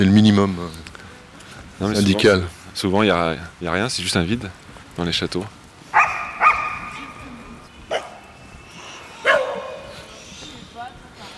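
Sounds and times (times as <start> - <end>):
speech: 0.0 - 0.9, 1.8 - 5.6
faint noise: 0.0 - 11.3
dogs barking: 5.9 - 7.3, 7.9 - 8.4, 9.1 - 10.1.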